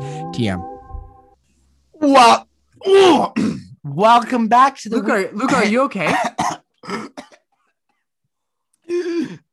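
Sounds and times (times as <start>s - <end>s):
speech: 0.4s - 0.8s, 2.0s - 7.3s, 8.9s - 9.4s
person coughing harshly after eating black pepper: 5.5s - 7.5s.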